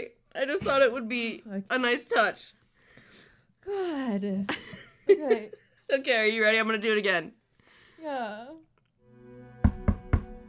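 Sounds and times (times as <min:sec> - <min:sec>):
speech: 0:00.0 - 0:02.6, 0:03.6 - 0:07.4, 0:08.0 - 0:08.7
firm deliberate knocks: 0:09.6 - 0:10.4.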